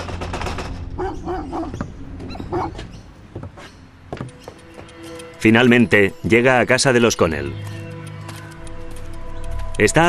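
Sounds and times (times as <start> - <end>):
dogs barking: 0.9 - 3.0
speech: 5.4 - 7.8, 9.8 - 10.0.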